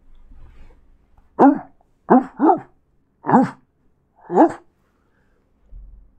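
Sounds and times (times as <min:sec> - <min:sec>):
person imitating muffled barking of a large dog: 0:01.4 - 0:03.6, 0:04.2 - 0:04.6.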